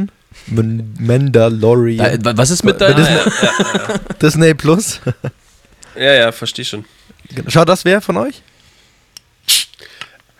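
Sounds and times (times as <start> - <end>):
speech: 0.0 - 5.4, 6.0 - 8.5, 9.5 - 9.9
laughter: 2.5 - 5.4
sneeze: 9.5 - 9.8
small mouth sounds: 9.5 - 9.9.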